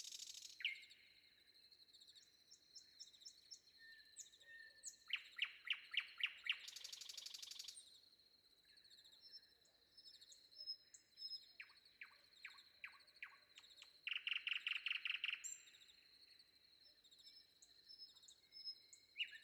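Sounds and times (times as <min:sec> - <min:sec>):
common nightingale singing before dawn: 0:00.0 - 0:01.0, 0:02.2 - 0:07.8, 0:10.1 - 0:16.0, 0:17.0 - 0:19.4
faint chorus of other birds: 0:00.0 - 0:19.4.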